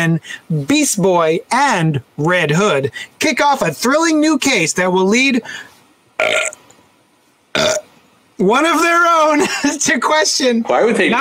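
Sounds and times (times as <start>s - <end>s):
speech: 0.0s - 6.5s, 8.4s - 11.1s
throaty burps: 6.2s - 6.6s, 7.5s - 7.9s.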